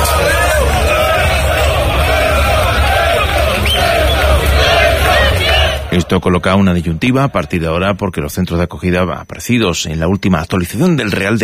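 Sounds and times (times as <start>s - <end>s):
large crowd shouting and chanting in support of the president of the government: 0.0s - 7.6s
speech: 6.0s - 11.4s.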